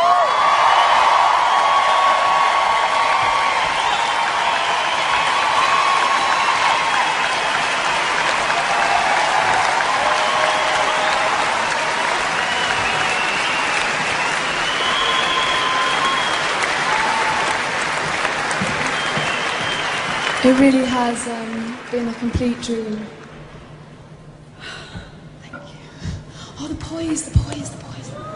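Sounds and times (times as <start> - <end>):
faint whoops and cheers from the audience: 0.0 - 20.5
large audience applauding an orchestra: 0.0 - 22.9
speech: 20.5 - 21.5, 22.2 - 23.2, 27.0 - 27.8.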